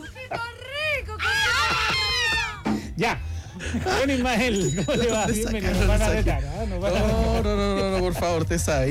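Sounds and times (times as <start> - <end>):
speech: 0.3 - 0.6, 3.0 - 8.8
several people shouting and yelling in high-pitched overlapping voices: 1.2 - 2.6.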